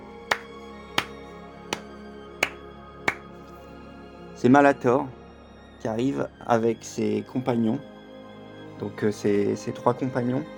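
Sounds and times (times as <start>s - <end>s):
person clapping hands: 0.2s - 3.4s
speech: 4.4s - 5.2s, 5.8s - 7.9s, 8.8s - 10.5s.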